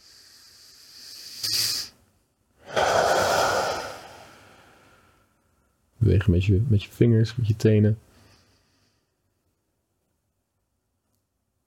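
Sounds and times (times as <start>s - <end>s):
deep breaths in through the nose during a guided relaxation exercise: 0.0s - 2.0s, 2.6s - 5.4s, 8.1s - 9.3s
speech: 6.0s - 8.1s.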